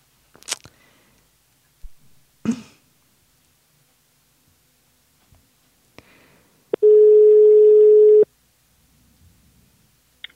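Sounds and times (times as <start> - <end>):
telephone tone after a call is accidentally hung up: 6.8 - 8.3.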